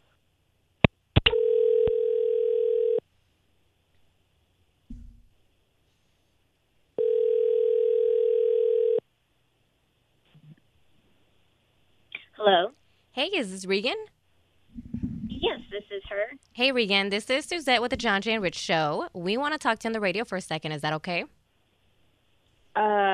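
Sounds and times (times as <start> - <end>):
telephone ringback tone heard through the line: 1.3 - 3.0, 7.0 - 9.0
speech: 13.2 - 14.1, 15.5 - 21.4, 22.8 - 23.1.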